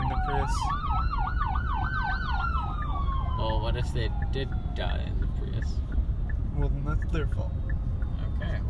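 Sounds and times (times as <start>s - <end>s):
ambulance siren wailing in a fast yelp: 0.0s - 5.8s
low rumble of road traffic: 0.0s - 8.6s
speech: 0.5s - 0.8s, 3.7s - 6.0s, 6.6s - 7.6s.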